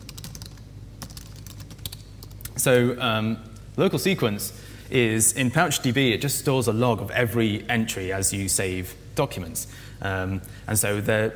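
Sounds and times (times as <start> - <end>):
quick bursts of typing on a computer keyboard: 0.0 - 2.5
speech: 2.6 - 11.3.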